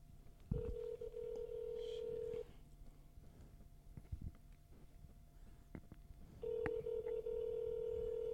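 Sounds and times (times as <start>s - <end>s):
ringback tones of an outgoing phone call through a handset: 0.6s - 2.5s, 6.4s - 8.3s.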